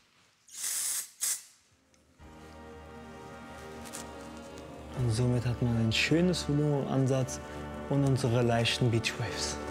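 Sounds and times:
aerosol dry shampoo spray hissing onto hair roots: 0.5 - 1.6
speech: 5.0 - 9.6.

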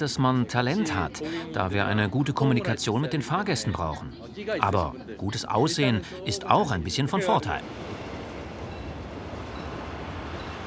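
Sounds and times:
speech: 0.0 - 8.0
train wheels and carriages rumbling on rails: 7.6 - 10.6.

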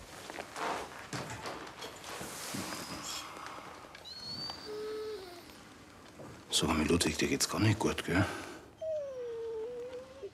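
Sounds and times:
dog whimpering: 4.0 - 5.6, 8.8 - 10.3
speech: 6.6 - 8.5.

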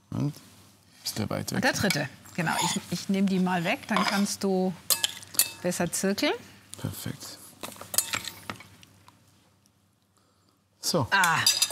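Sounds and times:
speech: 0.2 - 4.9, 5.6 - 7.4, 10.9 - 11.6
cutlery and plates clinking while food is served: 3.9 - 5.6, 7.7 - 8.7, 11.2 - 11.6.

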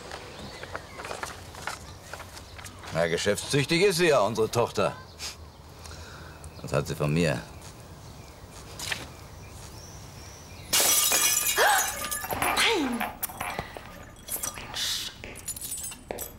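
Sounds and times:
speech: 2.9 - 5.3, 6.7 - 7.5
drinking glass shattering: 10.7 - 14.7
glass shards tinkling and skittering: 10.7 - 16.3.

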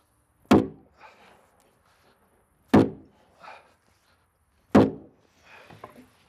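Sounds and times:
wooden log girder hammered into place on a log cabin under construction: 0.5 - 0.8, 2.7 - 3.1, 4.7 - 5.1.

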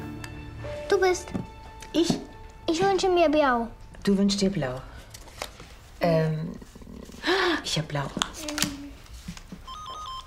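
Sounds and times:
speech: 0.9 - 4.9, 6.0 - 6.4, 7.6 - 8.7
telephone ringing with a warbling electronic trill: 9.6 - 10.2.

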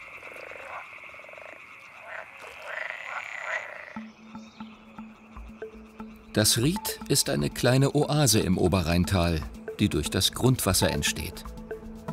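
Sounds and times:
low steady pulsing croak: 0.0 - 6.4
chorus of frogs croaking: 0.0 - 10.0
speech: 6.3 - 11.6.

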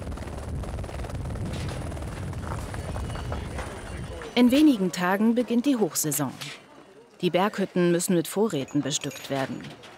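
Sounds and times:
helicopter flying cargo loads to mountain huts: 0.0 - 5.4
speech: 4.4 - 6.6, 7.2 - 9.9.

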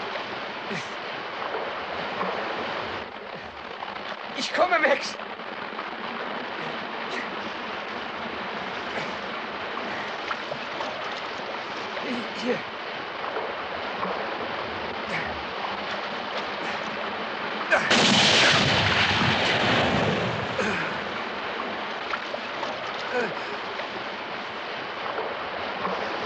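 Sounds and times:
noisy background: 0.0 - 26.2
speech: 0.7 - 1.0, 4.4 - 5.3, 12.4 - 12.7
single gunshot: 17.8 - 20.6.

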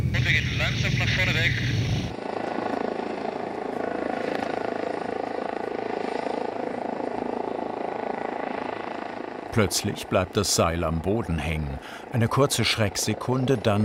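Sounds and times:
helicopter pulling a pilot rope for power line construction: 0.0 - 13.8
speech: 0.3 - 2.2, 9.6 - 13.8.

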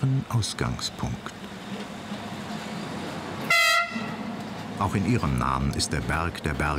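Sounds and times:
speech: 0.0 - 1.4, 4.8 - 6.7
rack railway train horn toot on Mont Blanc in France: 3.4 - 4.3.

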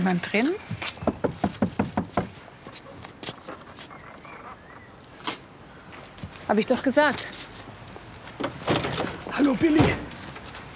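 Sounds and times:
speech: 0.0 - 1.0, 6.5 - 7.4, 9.5 - 10.1
knocking on a caravan door: 1.0 - 2.3.

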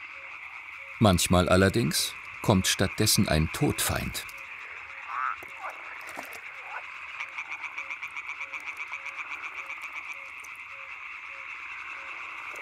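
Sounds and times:
yellow-bellied toads or pond frogs croaking in chorus to attract a mate: 0.0 - 12.6
speech: 1.0 - 4.4.

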